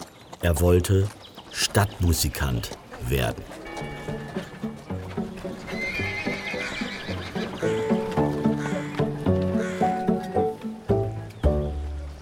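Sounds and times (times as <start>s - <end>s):
hooves clip-clopping at a trot: 0.0s - 12.0s
speech: 0.4s - 3.9s
donkey braying: 3.3s - 10.6s.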